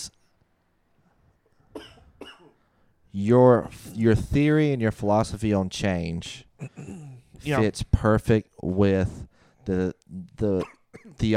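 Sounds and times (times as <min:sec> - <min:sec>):
harsh coughs from someone who has just inhaled water: 0:01.7 - 0:02.7, 0:06.6 - 0:07.3, 0:10.6 - 0:11.2
speech: 0:03.1 - 0:11.3.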